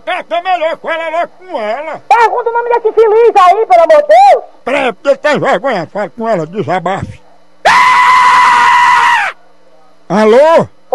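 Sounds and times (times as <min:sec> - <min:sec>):
speech: 0:00.0 - 0:07.8, 0:10.1 - 0:10.9
man screaming in fright: 0:07.6 - 0:09.4.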